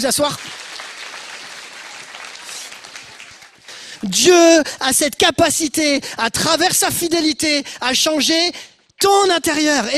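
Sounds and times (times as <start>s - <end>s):
speech: 0.0s - 0.6s, 4.0s - 9.9s
audience applauding performers: 0.0s - 4.0s.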